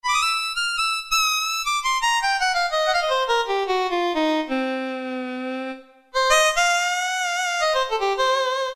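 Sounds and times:
harmonica: 0:00.0 - 0:08.7.

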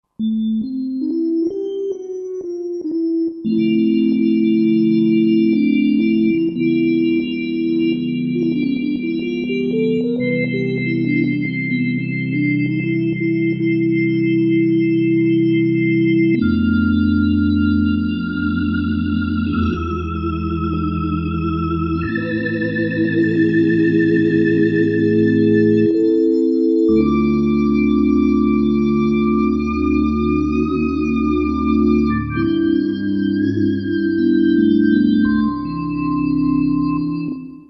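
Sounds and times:
1960s and 1970s style ballad: 0:00.2 - 0:37.6.

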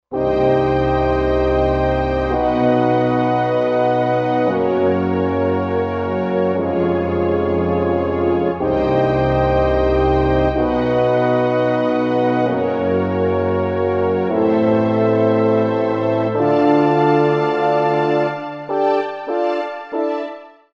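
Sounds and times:
French horn on a Korg Wavestation A-D synthesizer: 0:00.1 - 0:20.4
strings on a Korg Wavestation A-D synthesizer: 0:00.2 - 0:20.6.

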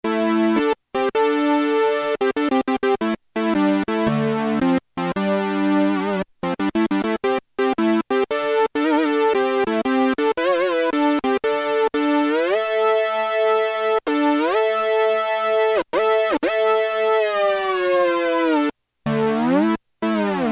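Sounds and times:
Roland JX-3P synthesizer fat fifth chord: 0:00.0 - 0:20.5.

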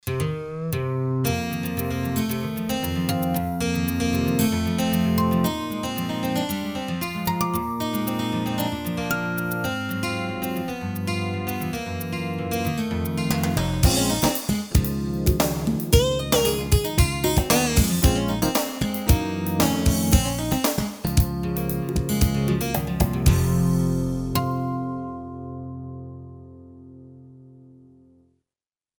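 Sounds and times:
Roland JV-880 synthesizer guitars factory demo song: 0:00.0 - 0:27.8.

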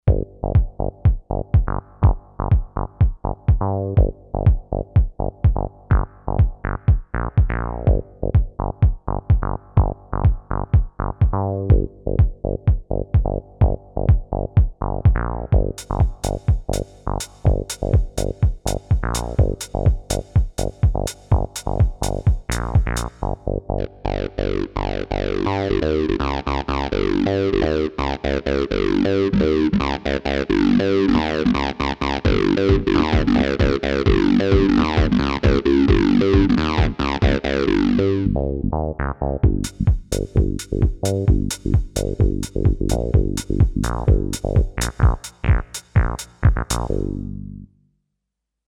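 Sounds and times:
drums on a Kawai K5000S synthesizer: 0:00.0 - 0:23.4, 0:32.3 - 0:37.5, 0:39.4 - 0:47.1
bass on a Kawai K5000S synthesizer: 0:00.0 - 0:47.8.

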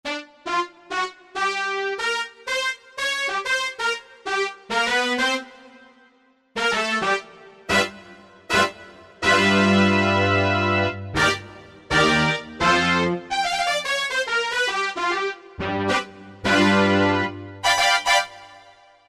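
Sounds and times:
Korg M1 synthesizer brass patch: 0:00.1 - 0:19.0.

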